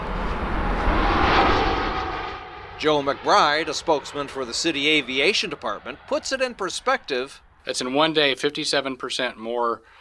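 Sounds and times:
small private plane engine droning overhead while flying into an airport: 0:00.0 - 0:07.9
speech: 0:02.8 - 0:09.9.

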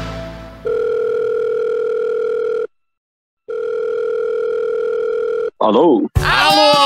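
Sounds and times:
telephone dial tone while placing a call: 0:00.7 - 0:02.7, 0:03.5 - 0:05.6
speech: 0:05.7 - 0:06.7.

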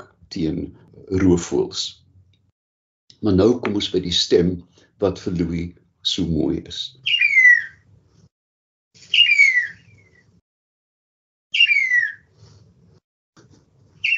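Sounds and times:
speech: 0:00.3 - 0:02.0, 0:03.2 - 0:07.2
starling giving descending whistled calls: 0:07.0 - 0:07.8, 0:09.0 - 0:10.3, 0:11.5 - 0:12.3.

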